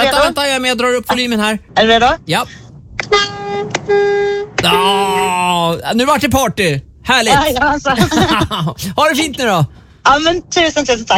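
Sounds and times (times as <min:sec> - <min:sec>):
speech: 0:00.3 - 0:11.1
loud truck horn blasts: 0:03.0 - 0:04.8
laughter: 0:08.0 - 0:08.9.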